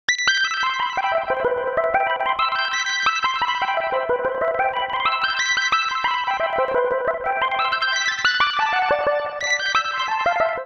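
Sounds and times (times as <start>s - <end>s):
smooth lead melody in E minor at 90 bpm: 1.0s - 10.6s.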